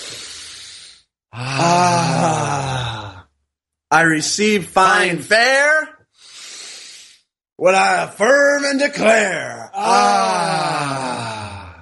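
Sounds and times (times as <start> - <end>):
deep breath taken to clear the mind: 0.0 - 3.3, 6.1 - 7.3
low sighing groan: 1.4 - 3.3, 9.8 - 11.8
speech: 3.9 - 6.0, 7.6 - 11.3.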